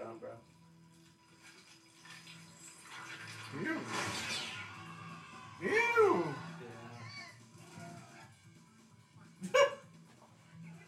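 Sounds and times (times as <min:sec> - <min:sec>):
speech: 0:03.5 - 0:04.4
dog barking: 0:09.4 - 0:09.9.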